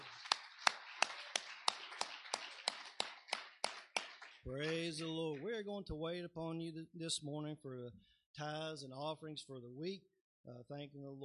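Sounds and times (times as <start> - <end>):
church audience clapping in unison during a worship service: 0.0 - 5.6
speech: 4.5 - 11.2.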